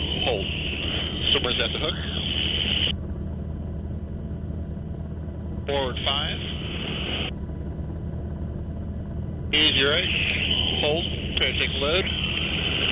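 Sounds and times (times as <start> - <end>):
radio voice crackling: 0.0 - 2.9, 5.7 - 7.3, 9.5 - 12.9
helicopter hovering over a rescue swimmer: 0.0 - 12.9
speech: 0.2 - 0.7, 1.3 - 2.2, 5.7 - 6.7, 9.5 - 12.2.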